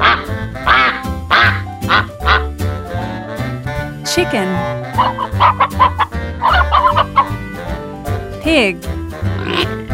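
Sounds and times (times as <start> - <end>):
duck quacking: 0.0 - 2.5, 4.8 - 7.4, 9.3 - 9.8
speech: 4.2 - 5.7, 8.5 - 9.0.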